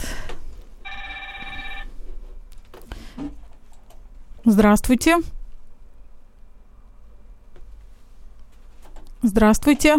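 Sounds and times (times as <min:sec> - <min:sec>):
telephone ringing with electronic trill: 0:00.8 - 0:02.0
speech: 0:04.4 - 0:05.4, 0:09.3 - 0:09.9.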